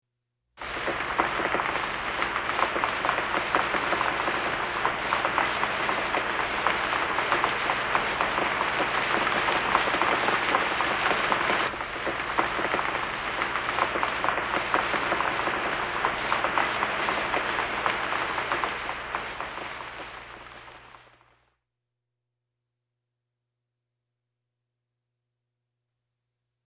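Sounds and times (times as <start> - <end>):
rain in woods: 0.6 - 21.5.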